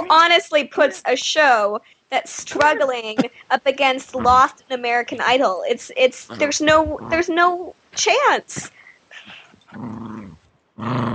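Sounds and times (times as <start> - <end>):
speech: 0.1 - 10.2, 10.8 - 11.1
dog growling: 6.3 - 7.2, 9.7 - 11.1.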